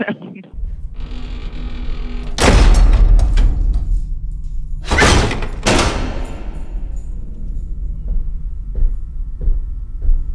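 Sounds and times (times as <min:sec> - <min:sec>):
heavy door grinding creaking slide effect: 0:00.6 - 0:04.0, 0:04.8 - 0:07.0
heavy door loud slam effect: 0:01.0 - 0:07.2
sharp booming impacts: 0:02.2 - 0:07.4.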